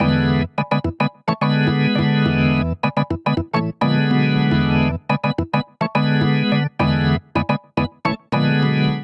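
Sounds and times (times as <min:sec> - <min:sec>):
electric funk organ vamp in E7: 0:00.0 - 0:09.0.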